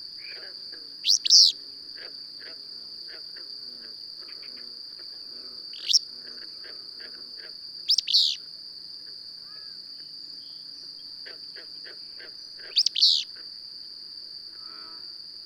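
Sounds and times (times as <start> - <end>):
continuous shrill insect buzz: 0.0 - 15.4
bird song of rapid steeply swept high notes: 1.0 - 1.6, 5.8 - 6.1, 7.9 - 8.4, 12.4 - 13.3.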